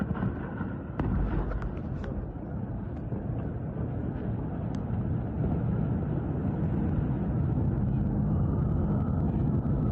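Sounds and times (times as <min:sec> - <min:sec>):
sharp cracks and bangs: 0:00.0 - 0:02.2
heavy continuous rumble of explosions: 0:00.0 - 0:09.9.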